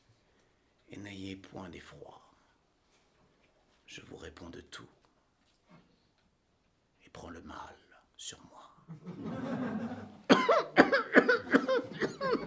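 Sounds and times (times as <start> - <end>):
speech: 0.9 - 2.3, 3.9 - 5.0, 7.1 - 12.4
laughter: 8.9 - 12.4
harsh coughs from a stubborn cold: 10.3 - 12.4.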